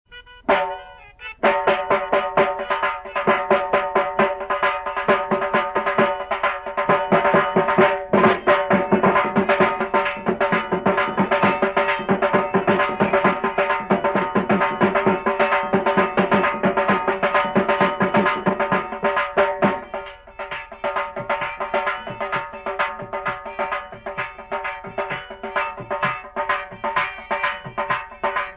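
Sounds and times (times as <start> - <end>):
Punjabi dhol instrumental: 0.1 - 28.5.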